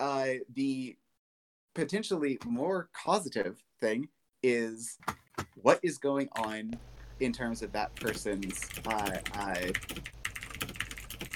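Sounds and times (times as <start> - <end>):
speech: 0.0 - 1.0, 1.8 - 10.2
loud typing on a computer keyboard: 7.9 - 11.3.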